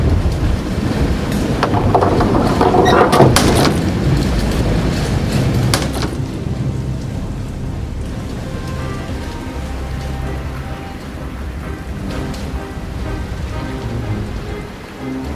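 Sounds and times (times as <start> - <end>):
heavy door sliding shut: 0.0 - 15.3
low rumble of wind and storm noise: 0.0 - 15.3
sharp knocks: 1.6 - 3.9, 5.7 - 6.2
heavy door scraping: 1.6 - 4.1.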